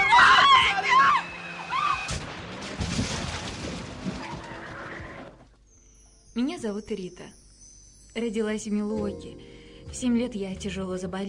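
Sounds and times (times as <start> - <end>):
tires screeching on a speeding car with failed brakes: 0.0 - 5.6
car crash: 0.6 - 5.5
rumbling, clattering crash aftermath: 2.1 - 5.4
speech: 6.6 - 7.4, 8.2 - 11.2.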